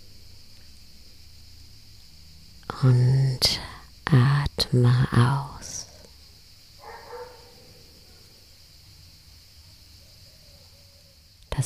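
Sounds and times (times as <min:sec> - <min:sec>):
steady high insect buzz: 0:00.0 - 0:11.6
speech: 0:02.8 - 0:05.8
dog bark: 0:06.8 - 0:08.4.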